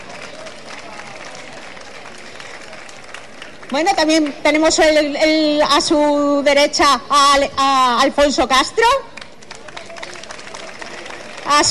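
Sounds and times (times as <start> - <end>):
audience applauding for the mayor of Huelva: 0.0 - 4.3, 9.2 - 11.6
speech: 3.7 - 9.1, 11.5 - 11.6.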